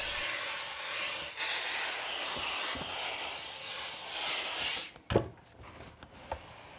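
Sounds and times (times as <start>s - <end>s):
steam iron hissing on a felt hat: 0.0s - 4.9s.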